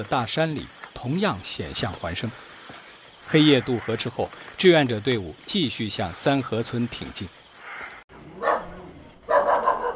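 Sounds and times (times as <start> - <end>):
speech: 0.0 - 2.5, 3.3 - 7.4
dog barking at night in a remote mountain village after a flood: 8.4 - 9.9.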